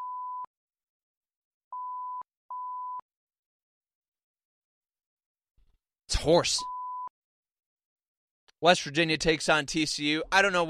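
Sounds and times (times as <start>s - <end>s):
censor beeps at around 1 kHz: 0.0s - 0.5s, 1.7s - 3.0s, 6.6s - 7.1s
speech: 6.2s - 6.7s, 8.6s - 10.6s.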